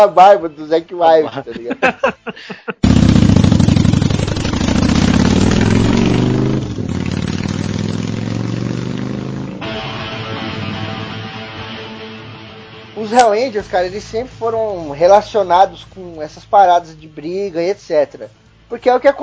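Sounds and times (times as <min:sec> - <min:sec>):
speech: 0:00.0 - 0:03.7, 0:13.1 - 0:19.2
laughter: 0:01.2 - 0:02.8
large 750cc motorcycle engine starting, revving and rumbling: 0:02.8 - 0:10.8.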